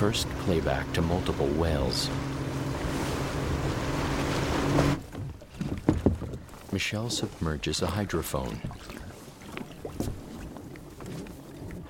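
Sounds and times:
speech: 0.0s - 2.4s, 6.8s - 8.9s
rushing water from a boat heading out to deep water: 0.0s - 11.8s
wind over a boat heading out to deep water: 0.0s - 11.8s
quieter knocks and a short bump on a boat: 4.8s - 6.4s.

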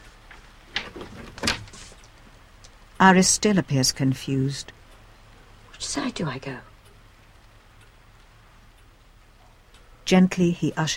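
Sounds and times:
kitchen door opening click: 0.7s - 1.8s
speech: 3.0s - 4.8s, 6.0s - 6.7s, 10.1s - 10.9s.

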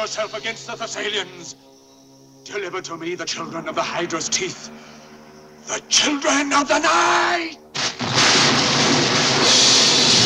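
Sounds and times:
speech: 0.0s - 1.8s, 2.4s - 5.0s, 5.6s - 8.6s
exploding fireballs: 7.8s - 10.2s
thunder: 7.8s - 10.2s.

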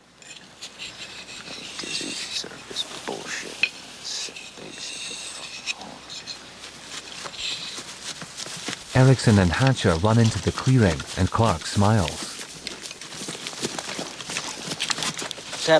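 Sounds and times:
hiss: 0.0s - 15.7s
knife being sharpened on a whetstone: 0.2s - 2.5s, 3.6s - 5.8s
speech: 9.0s - 12.2s.

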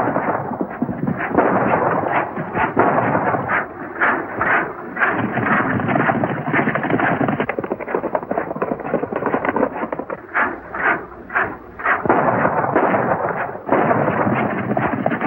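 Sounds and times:
horse hooves galloping at full speed: 0.2s - 15.2s.

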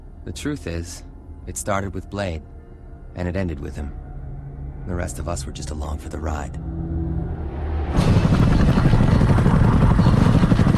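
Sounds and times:
speech: 0.2s - 2.5s, 3.2s - 4.0s, 4.8s - 6.7s
rotors of two black helicopters flying over dusty Syrian desert hills: 8.0s - 10.7s.

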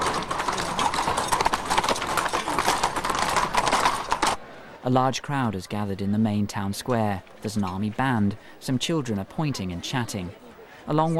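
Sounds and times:
horses ridden through a village clip-clopping: 0.0s - 4.4s
speech: 4.8s - 11.1s.

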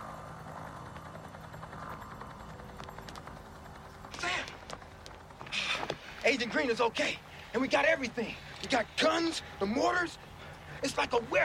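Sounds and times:
helicopter rotor roar: 0.0s - 11.4s
sharp crackles: 0.6s - 7.8s
speech: 6.3s - 10.2s, 10.8s - 11.4s.

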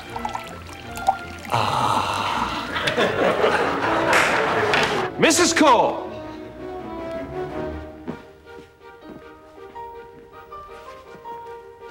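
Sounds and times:
water poured into a glass by a man: 0.0s - 2.8s
speech: 1.5s - 1.8s, 5.2s - 6.1s
laughter: 1.8s - 5.1s.

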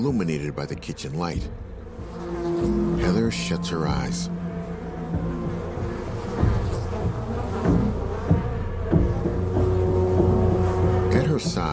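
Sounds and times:
speech: 0.0s - 1.8s, 2.6s - 4.4s, 11.4s - 11.7s
swarm of wasps buzzing on a glass panel above a kitchen door: 1.2s - 11.7s
low hum: 1.3s - 11.7s.

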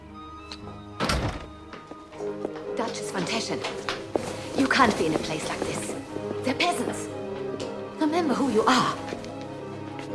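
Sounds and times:
door bursting open with a heavy thunk: 1.0s - 1.5s
speech: 2.2s - 4.0s, 4.6s - 7.3s, 8.0s - 9.2s.

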